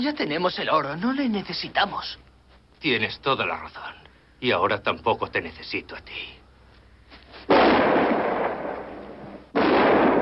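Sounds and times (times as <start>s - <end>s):
speech: 0.0s - 2.2s, 2.8s - 6.4s
loud gunshots with long rumbling echo: 7.5s - 10.2s.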